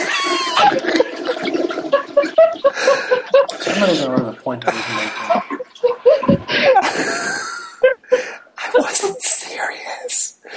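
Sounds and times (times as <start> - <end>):
toilet flushing: 0.0 - 7.8
people chuckling softly: 0.0 - 8.8
people whispering: 3.5 - 5.6, 8.5 - 10.5.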